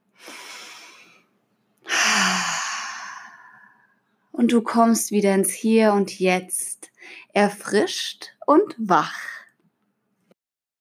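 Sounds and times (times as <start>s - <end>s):
deep breath in and out during a guided relaxation exercise: 0.1s - 1.3s, 1.9s - 4.0s
speech: 4.4s - 6.8s, 7.4s - 9.4s.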